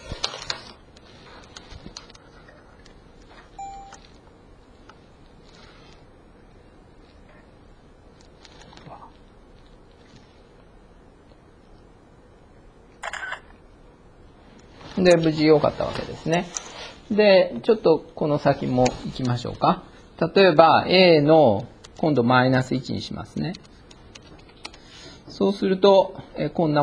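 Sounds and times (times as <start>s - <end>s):
quiet room noise: 0.0s - 26.8s
camera shutter clicks photographing a computer screen: 13.0s - 13.4s
speech: 15.0s - 23.7s, 25.4s - 26.8s.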